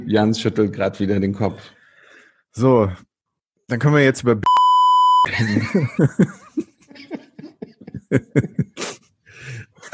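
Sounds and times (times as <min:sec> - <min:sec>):
speech: 0:00.1 - 0:01.8, 0:02.5 - 0:03.1, 0:03.7 - 0:04.6, 0:05.2 - 0:07.2
censor bleep: 0:04.5 - 0:05.3.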